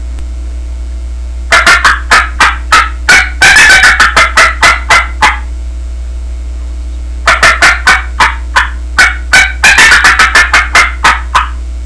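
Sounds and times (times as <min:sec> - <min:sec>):
turkey cackles: 0:01.5 - 0:05.5, 0:07.3 - 0:11.6.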